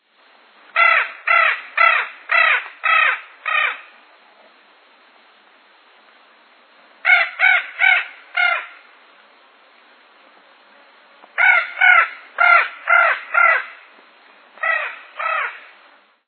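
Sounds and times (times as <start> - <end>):
Spix's macaw: 0.8 - 3.9, 7.1 - 8.8, 11.2 - 13.8, 14.6 - 15.7.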